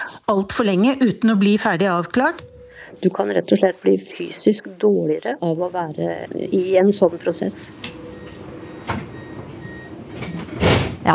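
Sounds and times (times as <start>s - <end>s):
speech: 0.3s - 8.0s
low rumble of riding inside a moving train: 2.4s - 11.1s.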